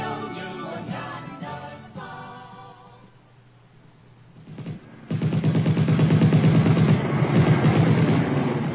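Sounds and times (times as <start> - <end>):
rapid heavy machine gun fire: 4.6 - 8.7.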